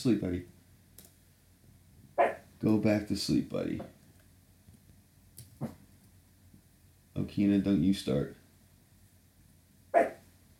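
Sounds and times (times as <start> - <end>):
speech: 0.0 - 0.5, 2.6 - 4.0, 7.2 - 8.4
dog barking, spooked by keyboard typing: 2.2 - 2.4, 9.9 - 10.2.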